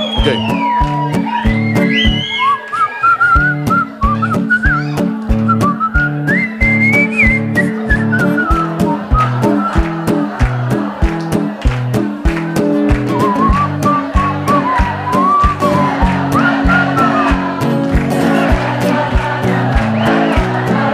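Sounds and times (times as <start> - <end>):
live concert audience whistling along: 0.0 - 10.3, 12.9 - 17.7, 19.4 - 20.9
speech: 0.2 - 0.7
laughter: 7.4 - 20.9.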